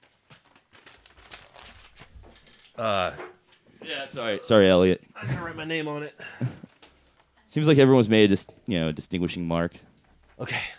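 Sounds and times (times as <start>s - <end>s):
paper sheets rustling and shuffling as people pass them: 0.0s - 2.8s, 6.6s - 7.5s
speech: 2.8s - 3.3s, 3.9s - 6.5s, 7.6s - 10.7s.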